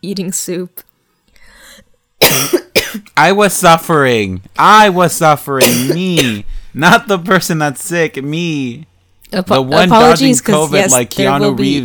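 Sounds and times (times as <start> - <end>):
speech: 0.0 - 0.9, 2.3 - 11.8
person coughing: 2.2 - 3.1, 5.6 - 6.5.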